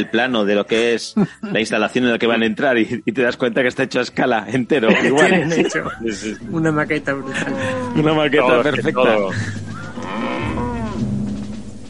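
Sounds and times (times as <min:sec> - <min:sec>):
speech: 0:00.0 - 0:09.6
laughter: 0:04.8 - 0:10.0
herd of cows mooing: 0:07.2 - 0:08.9, 0:09.7 - 0:11.1.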